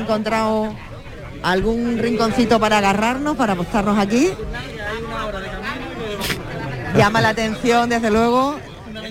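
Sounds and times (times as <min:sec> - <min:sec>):
speech: 0:00.0 - 0:05.6, 0:06.2 - 0:09.0
murmur of passengers in a crowded vehicle: 0:00.0 - 0:09.0
brief hiss: 0:06.2 - 0:06.5.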